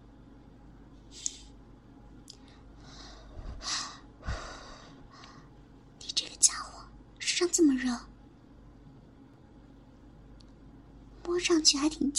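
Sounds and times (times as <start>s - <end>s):
person breathing heavily while hiding in a small cabinet: 2.8s - 5.5s
speech: 7.6s - 8.1s, 11.4s - 12.1s.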